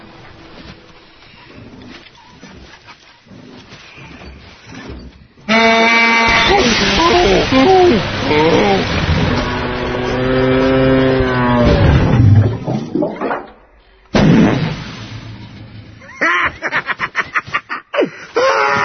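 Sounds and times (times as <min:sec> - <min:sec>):
engine rumbling: 0:00.0 - 0:16.4
tow truck horn honking: 0:05.5 - 0:08.6
thudding crash: 0:06.2 - 0:16.2
laughter: 0:16.1 - 0:18.1.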